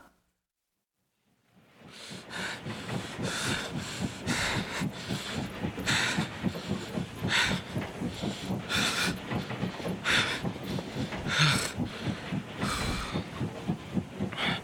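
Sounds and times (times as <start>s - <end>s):
moving train wheels clacking over rail joints: 1.6s - 14.6s.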